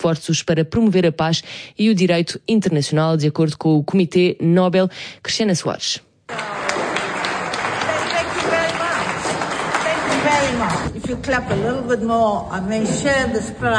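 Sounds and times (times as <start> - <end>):
speech: 0.0 - 6.5, 10.4 - 13.7
crowd at a summit on international law in Nuremberg clapping: 6.3 - 11.0.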